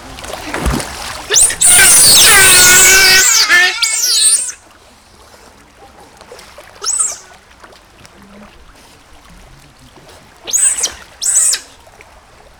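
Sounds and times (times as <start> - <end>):
Pteronura brasiliensis group calling: 1.3 - 4.6, 6.8 - 7.3, 10.5 - 11.7.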